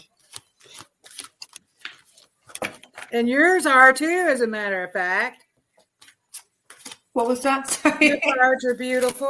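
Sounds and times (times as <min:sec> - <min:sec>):
playing cards being pulled out and handled: 0:00.0 - 0:03.2, 0:05.7 - 0:08.0, 0:08.7 - 0:09.2
speech: 0:03.1 - 0:05.4, 0:07.2 - 0:09.2.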